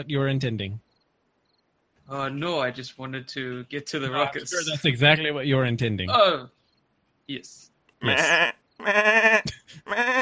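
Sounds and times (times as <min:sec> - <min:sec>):
speech: 0:00.0 - 0:00.9, 0:02.1 - 0:06.6, 0:07.3 - 0:10.2
goat bleating: 0:08.0 - 0:10.2.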